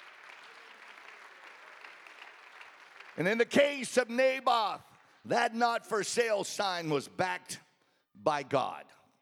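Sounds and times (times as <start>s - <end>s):
congregation clapping hands: 0.0s - 6.2s
speech: 3.2s - 7.6s, 8.2s - 9.0s.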